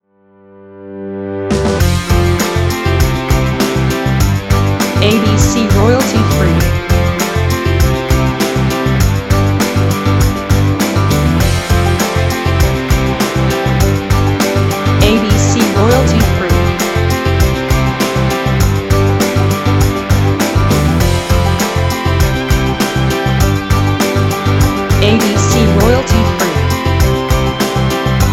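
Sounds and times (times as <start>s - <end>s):
folk rock music: 1.5s - 28.3s.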